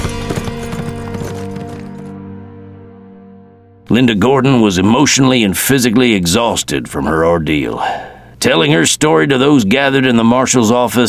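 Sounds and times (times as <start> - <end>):
horse galloping with a rider across flat ground at night: 0.0 - 2.3
speech: 3.9 - 11.0.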